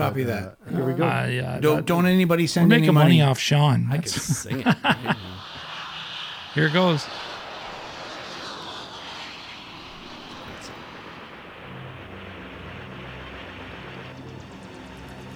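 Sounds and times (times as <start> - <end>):
speech: 0.0 - 5.3, 6.6 - 7.3
laughter: 0.0 - 5.7
helicopters flying: 4.5 - 15.3
low throbbing hum: 5.3 - 15.3.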